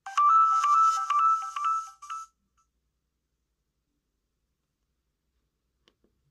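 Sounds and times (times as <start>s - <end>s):
mobile phone SMS ringtone: 0.0s - 2.4s.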